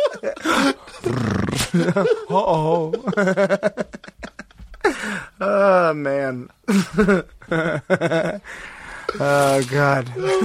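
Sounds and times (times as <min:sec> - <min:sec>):
laughter: 0:00.0 - 0:05.0, 0:06.7 - 0:08.4, 0:09.1 - 0:10.4
wolf growling and snarling by a highway: 0:01.0 - 0:01.7
speech: 0:01.1 - 0:04.0, 0:05.4 - 0:08.2.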